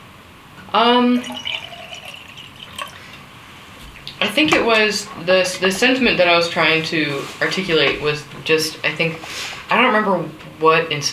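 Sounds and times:
speech: 0:00.7 - 0:01.6, 0:04.2 - 0:11.1
water poured from a pitcher: 0:01.1 - 0:03.3.

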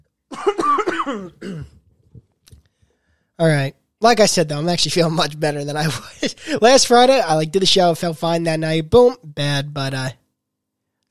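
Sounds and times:
raspy coughing fit: 0:00.3 - 0:01.9
speech: 0:01.1 - 0:01.8, 0:03.4 - 0:10.2
faint breaths: 0:02.6 - 0:03.4.

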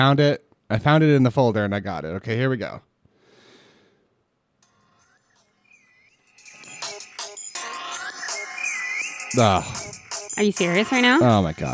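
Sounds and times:
speech: 0:00.0 - 0:02.9, 0:09.3 - 0:11.7
phone ringtone with incoming call: 0:04.6 - 0:11.7.

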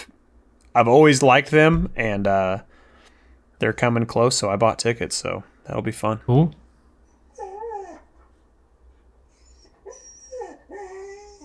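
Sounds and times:
speech: 0:00.8 - 0:02.7, 0:03.6 - 0:06.6
dog whimpering and yodeling: 0:07.3 - 0:08.2, 0:09.3 - 0:11.4.

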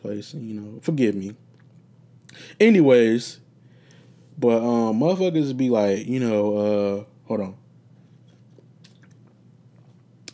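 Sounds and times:
speech: 0:00.0 - 0:01.5, 0:02.3 - 0:03.4, 0:04.4 - 0:07.6
low steady hum: 0:00.0 - 0:10.3
person sipping water with slurps and swallows: 0:08.3 - 0:10.3.

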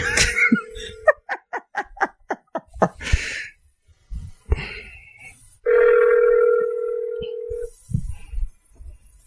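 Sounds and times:
people giggling: 0:00.0 - 0:03.0
phone ringing tone from an outgoing call: 0:00.5 - 0:01.2, 0:05.7 - 0:07.7.

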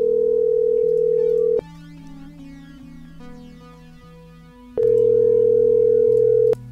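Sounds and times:
telephone ringback tone on an outgoing call: 0:00.0 - 0:01.6, 0:04.8 - 0:06.6.

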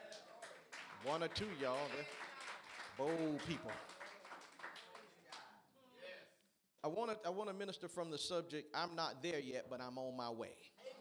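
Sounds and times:
scattered claps from a small crowd: 0:00.0 - 0:05.5
speech: 0:01.0 - 0:02.3, 0:03.0 - 0:03.9, 0:06.8 - 0:10.8.

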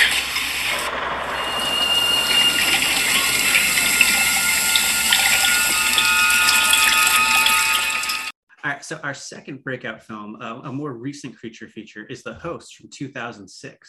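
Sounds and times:
liquid gushing down a sink drain: 0:00.0 - 0:08.3
speech: 0:08.9 - 0:13.8.

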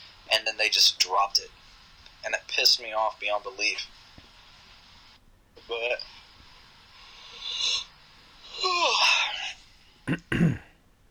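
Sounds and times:
speech: 0:00.6 - 0:01.6, 0:02.2 - 0:04.0, 0:05.6 - 0:06.2, 0:08.6 - 0:09.2
person yawning: 0:08.6 - 0:09.6.

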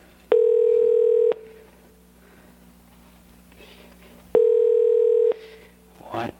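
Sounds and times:
phone call ring tones ringing out: 0:00.3 - 0:01.7, 0:04.3 - 0:05.7.

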